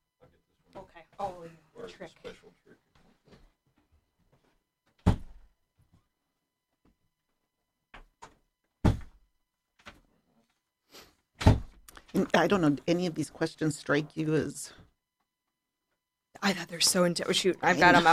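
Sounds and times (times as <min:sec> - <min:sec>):
speech: 0:01.4 - 0:02.8, 0:12.3 - 0:14.8, 0:16.4 - 0:18.1
door being shut with heavy thunks: 0:05.0 - 0:05.5, 0:08.0 - 0:09.2, 0:11.4 - 0:11.8.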